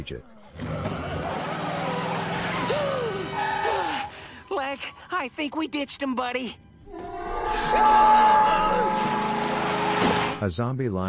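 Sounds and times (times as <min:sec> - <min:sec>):
speech: 0:00.0 - 0:00.9, 0:04.5 - 0:06.6, 0:07.6 - 0:08.9, 0:10.4 - 0:11.0
van engine revving as the vehicle accelerates and turns: 0:00.6 - 0:03.7, 0:08.3 - 0:10.4.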